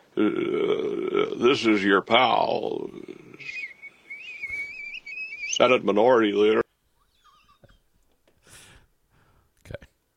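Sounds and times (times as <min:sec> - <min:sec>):
speech: 0:00.2 - 0:00.7, 0:01.4 - 0:03.6, 0:05.6 - 0:06.6
person whistling: 0:03.4 - 0:05.6.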